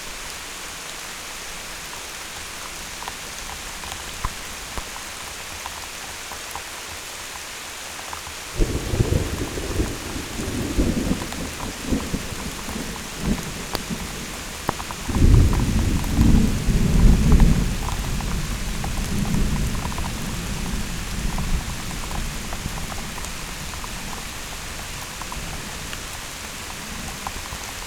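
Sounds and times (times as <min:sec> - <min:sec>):
thunderstorm: 0:08.6 - 0:27.8.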